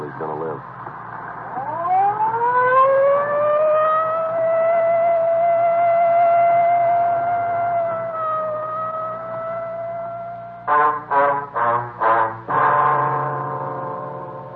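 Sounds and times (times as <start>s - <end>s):
faint low rumble: 0.0s - 14.5s
police car siren wailing: 1.4s - 14.5s.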